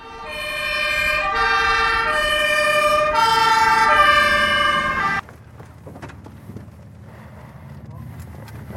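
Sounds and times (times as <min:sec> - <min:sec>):
distant rescue services siren wailing in alternating tones after a car crash: 0:00.0 - 0:05.2.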